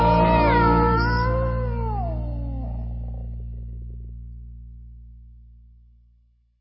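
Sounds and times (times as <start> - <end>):
cat meowing: 0.1 - 3.3.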